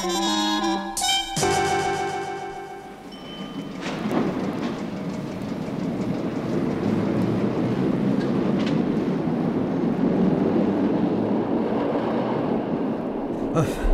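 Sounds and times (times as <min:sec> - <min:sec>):
metro train rumbling and rattling: 0:00.0 - 0:13.9
brief tonal chime: 0:01.0 - 0:03.8.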